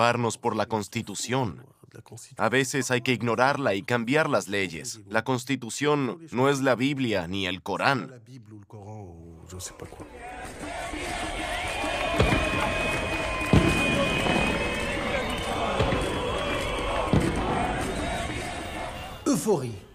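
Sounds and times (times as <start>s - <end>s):
speech: 0.0s - 11.5s, 19.3s - 19.9s
large outdoor crowd cheering and shouting: 10.0s - 19.3s
car horns blaring: 10.3s - 19.5s
applause: 10.4s - 19.2s
sharp bangs: 10.4s - 19.2s.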